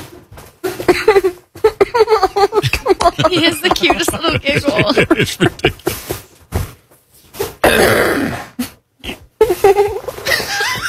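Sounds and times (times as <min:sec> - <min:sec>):
speech: 0:00.9 - 0:01.3, 0:04.5 - 0:06.0
laughter: 0:01.7 - 0:06.1, 0:09.6 - 0:10.8
man making voiced sounds: 0:03.2 - 0:05.8
man giving a big rough throat clear: 0:07.6 - 0:08.2.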